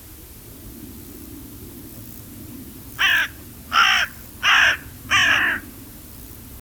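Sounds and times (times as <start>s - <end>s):
Corvus corone carrion crow cawing: 3.0s - 5.7s.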